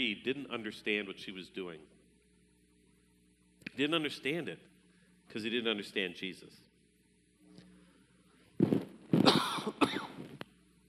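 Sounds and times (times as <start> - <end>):
speech: 0.0 - 2.0, 3.7 - 4.7, 5.3 - 6.7
person coughing from a tickle in the throat: 9.2 - 10.2.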